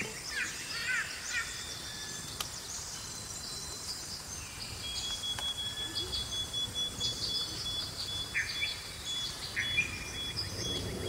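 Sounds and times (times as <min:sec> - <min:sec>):
jungle birds chirping and calling: 0:00.0 - 0:11.0
jungle insects buzzing and trilling: 0:00.0 - 0:11.0.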